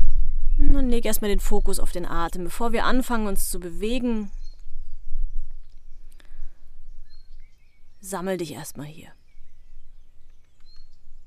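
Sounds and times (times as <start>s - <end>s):
bird chirps: 0.0s - 11.2s
speech: 0.8s - 4.4s, 8.0s - 9.2s.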